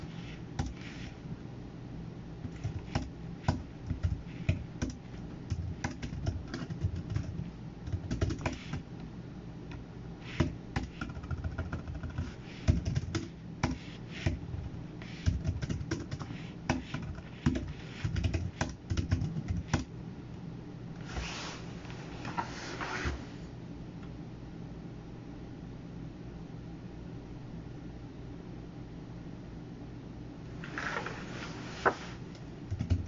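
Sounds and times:
steady low hum: 0.0 - 33.0
computer keys tapping: 0.3 - 1.1, 2.4 - 8.8, 10.3 - 19.9, 32.7 - 33.0.

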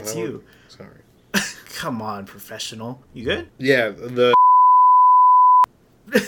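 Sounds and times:
speech: 0.0 - 4.4
loud single-pitch censor bleep tone: 4.4 - 5.7.

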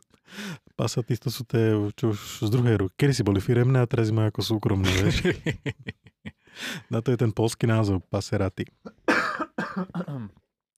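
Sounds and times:
speech: 0.8 - 9.0, 9.8 - 10.4
laughter: 4.8 - 6.4
person coughing harshly: 8.9 - 10.4.

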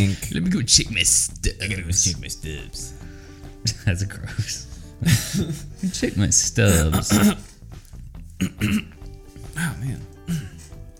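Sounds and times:
speech: 0.0 - 7.5, 8.4 - 9.0, 9.6 - 10.6
person clearing throat: 6.7 - 7.5, 8.4 - 9.0.

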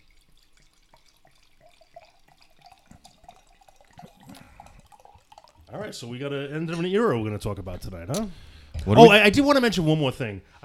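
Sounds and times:
wine pouring from a bottle: 0.0 - 6.2
speech: 5.7 - 10.6.

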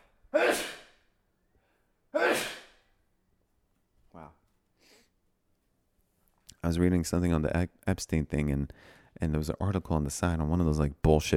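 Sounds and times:
sneeze: 0.3 - 1.1, 2.1 - 2.9
speech: 6.6 - 11.3.

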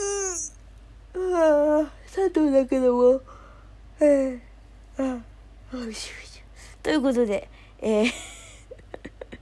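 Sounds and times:
person yawning with a low voiced groan: 0.0 - 0.6
speech: 2.3 - 3.3, 4.0 - 8.3.

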